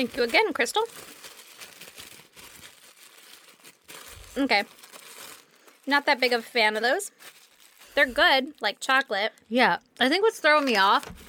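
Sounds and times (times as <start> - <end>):
speech: 0.0 - 1.3, 4.4 - 4.8, 5.8 - 7.4, 8.0 - 11.2
tissue paper crumpling: 0.0 - 8.8.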